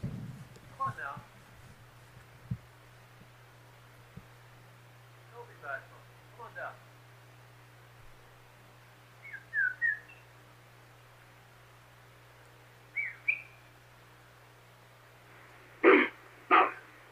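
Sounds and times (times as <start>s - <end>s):
low steady hum: 0.0s - 17.0s
sequence of short whistles: 9.2s - 10.3s, 13.0s - 13.6s.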